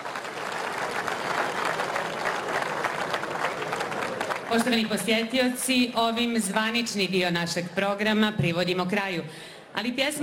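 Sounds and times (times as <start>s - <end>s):
crowd at a traditional folk-singing festival evening applauding: 0.0s - 5.3s
speech: 4.5s - 10.2s.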